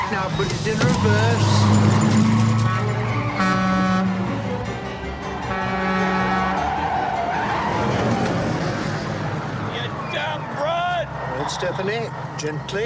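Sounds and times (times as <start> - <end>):
car engine and road noise: 0.0 - 12.8
car tires screeching from hard braking on a one-way street: 0.0 - 12.8
speech: 0.1 - 1.9, 11.5 - 12.8.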